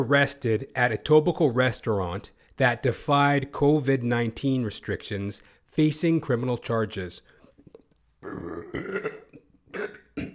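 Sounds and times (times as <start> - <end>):
speech: 0.0 - 7.3, 8.2 - 9.2
loud drawn-out burp: 8.2 - 10.3.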